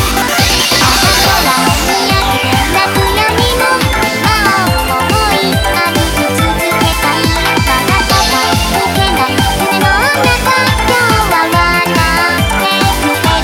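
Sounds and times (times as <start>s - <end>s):
chorus melody built from chords: 0.2s - 13.2s.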